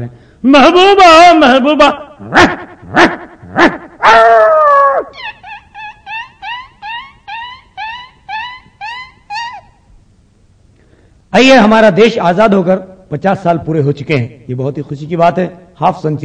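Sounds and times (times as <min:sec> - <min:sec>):
speech: 0:00.0 - 0:03.2, 0:11.3 - 0:16.2
human voice mimicking yelps of a dog hit by a stone: 0:02.2 - 0:09.8.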